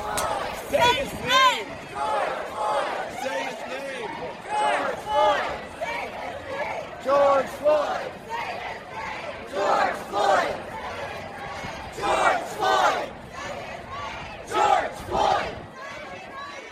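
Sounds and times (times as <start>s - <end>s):
large protest crowd chanting a slogan in the United States: 0.0s - 16.7s.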